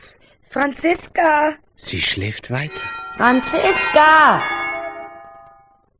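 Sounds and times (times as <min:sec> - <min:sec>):
speech: 0:00.6 - 0:04.6
doorbell chime: 0:02.7 - 0:05.9.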